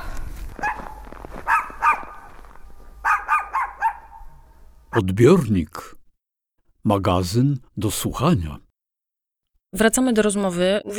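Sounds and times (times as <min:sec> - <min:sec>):
faint low rumble: 0:00.0 - 0:05.0
dog barking: 0:00.5 - 0:05.1
speech: 0:05.0 - 0:06.0, 0:06.8 - 0:08.6, 0:09.7 - 0:10.9.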